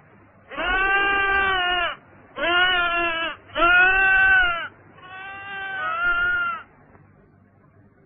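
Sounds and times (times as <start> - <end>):
sheep bleating: 0.5 - 6.7.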